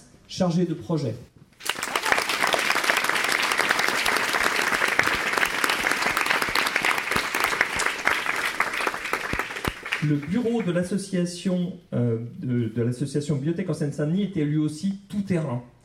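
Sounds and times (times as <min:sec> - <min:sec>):
speech: 0:00.3 - 0:01.3, 0:10.0 - 0:15.8
crowd clapping: 0:01.6 - 0:10.8.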